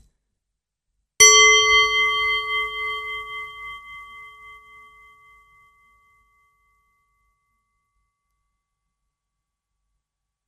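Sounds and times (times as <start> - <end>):
hand-held singing bowl struck and ringing: 1.2 - 8.2.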